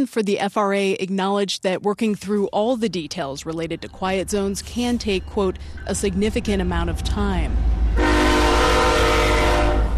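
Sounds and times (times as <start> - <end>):
speech: 0.0 - 7.7
low rumble of a passing train: 3.1 - 9.9
train horn blast from a train passing through Fort Collins: 7.9 - 9.9.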